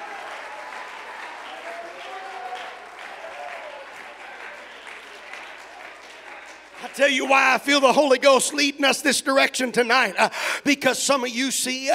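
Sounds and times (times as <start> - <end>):
scattered cheers and shouts: 0.0 - 7.5
large crowd clapping: 0.0 - 8.2
speech: 6.8 - 11.9.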